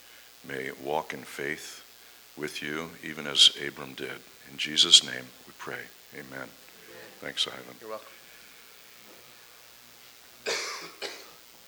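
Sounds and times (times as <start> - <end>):
speech: 0.5 - 6.6, 7.2 - 8.2
coughs into a microphone: 10.4 - 11.4.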